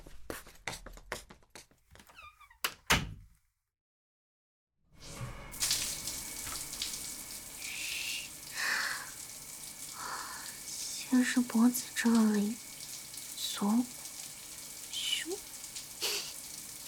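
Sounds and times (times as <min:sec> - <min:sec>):
water running for a shower: 0:05.0 - 0:16.8
speech: 0:11.2 - 0:12.6, 0:13.6 - 0:14.0.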